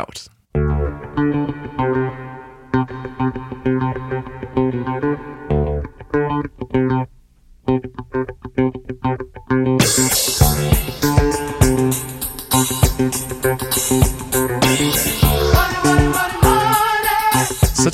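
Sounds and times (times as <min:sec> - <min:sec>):
loud rock track: 0:00.6 - 0:07.0, 0:07.7 - 0:17.9
drums and cymbals with sweeping phaser-flange effect: 0:09.8 - 0:17.9.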